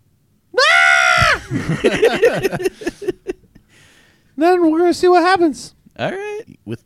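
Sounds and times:
person imitating an elf with a loud high-pitched scream: 0:00.6 - 0:01.4
laughter: 0:01.2 - 0:03.7
speech: 0:01.5 - 0:03.1, 0:04.4 - 0:06.8.

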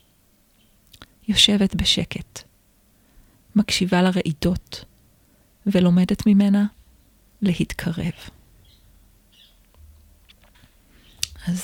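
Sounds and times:
speech: 0:01.3 - 0:02.5, 0:03.6 - 0:04.9, 0:05.6 - 0:06.8, 0:07.4 - 0:08.4, 0:11.4 - 0:11.6
faint bird chirps: 0:08.5 - 0:11.6
low rumble: 0:09.0 - 0:10.8.

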